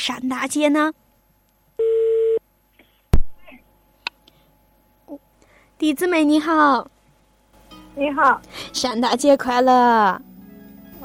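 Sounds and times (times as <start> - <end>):
speech: 0.0 - 1.0, 5.8 - 7.0, 8.0 - 10.3
steady electronic phone ringback tone: 1.8 - 2.4.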